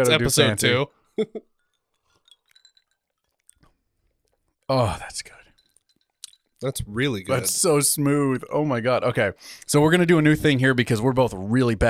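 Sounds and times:
speech: 0.0s - 1.5s, 4.7s - 5.4s, 6.6s - 11.8s
glasses clinking together in a toast: 0.0s - 8.0s
faint light glassy taps: 1.6s - 7.2s.

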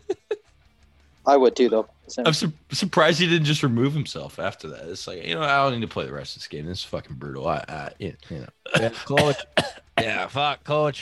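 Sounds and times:
speech: 1.3s - 11.0s
person imitating a dry cough: 8.6s - 10.3s.

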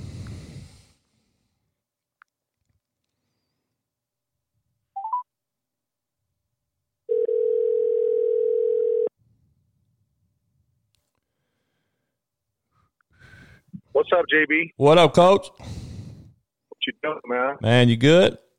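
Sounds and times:
telephone dial tone while calling someone: 7.1s - 9.1s
speech: 14.0s - 15.8s, 16.8s - 18.4s.

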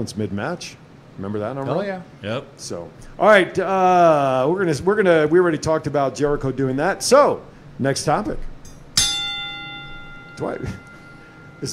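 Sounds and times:
speech: 0.0s - 8.5s, 10.4s - 10.8s, 11.6s - 11.7s
boxing-style ring bell clanging: 8.7s - 11.7s.

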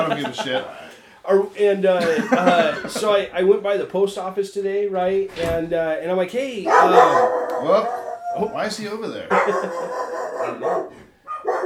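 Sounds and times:
laughter: 0.0s - 0.9s, 2.0s - 3.3s, 9.2s - 10.8s
speech: 0.0s - 11.0s
dog barking: 6.7s - 8.5s, 9.3s - 11.6s.

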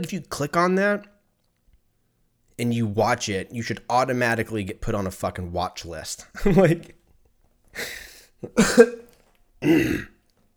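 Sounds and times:
speech: 0.0s - 1.1s, 2.6s - 7.0s, 7.7s - 9.0s, 9.6s - 10.1s
harsh throaty coughs into a microphone: 8.4s - 10.2s.

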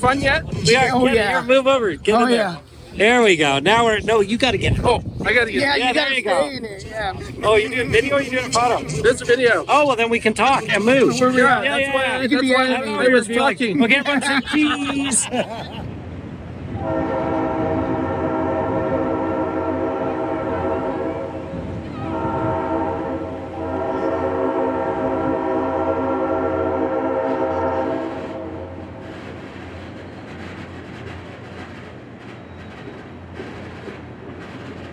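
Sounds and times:
speech: 0.0s - 15.8s
rumble of passing train: 0.0s - 34.9s
laughter: 5.6s - 15.9s
train horn blasting on a tourist railroad: 16.7s - 29.0s.

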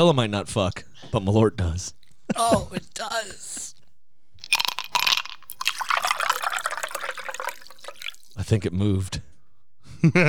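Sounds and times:
speech: 0.0s - 3.8s, 8.4s - 9.3s, 10.0s - 10.2s
laughter: 2.2s - 3.7s, 9.9s - 10.2s
liquor shot splashing and trickling: 4.4s - 8.4s
glasses clinking in a toast: 4.5s - 8.4s.

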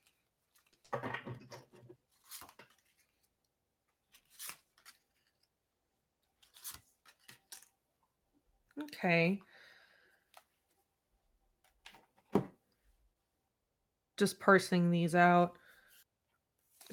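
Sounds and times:
deck of tarot cards being shuffled: 2.1s - 3.3s, 4.0s - 5.5s, 6.3s - 7.7s
tarot cards slapping and flicking as the deck is squared and cut: 4.1s - 5.3s, 6.4s - 7.7s
speech: 8.9s - 9.5s, 14.2s - 15.6s.

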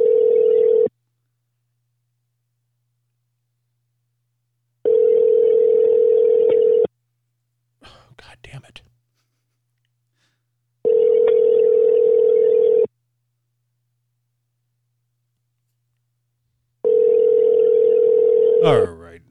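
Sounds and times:
phone call ringback tones: 0.0s - 0.9s, 4.9s - 6.9s, 10.8s - 12.9s, 16.8s - 19.1s.

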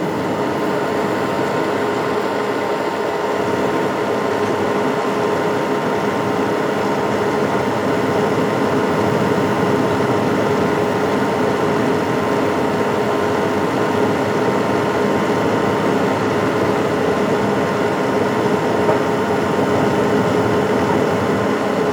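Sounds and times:
fan whooshing hum with motor drone: 0.0s - 21.9s.

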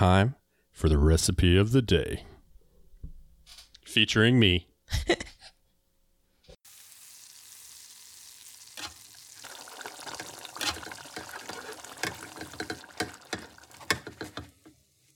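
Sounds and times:
speech: 0.0s - 2.3s, 3.9s - 5.3s
food sizzling in a hot pan: 6.6s - 15.1s.

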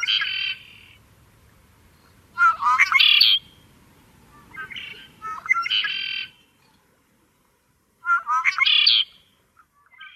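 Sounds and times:
red-winged blackbird gurgling buzzy song: 0.0s - 1.0s, 2.0s - 3.7s, 4.3s - 6.6s, 8.0s - 10.1s.

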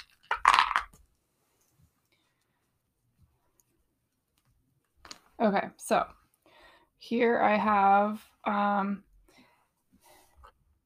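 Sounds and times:
dice tossed into a container: 0.0s - 1.0s
speech: 5.4s - 6.2s, 7.0s - 9.1s.

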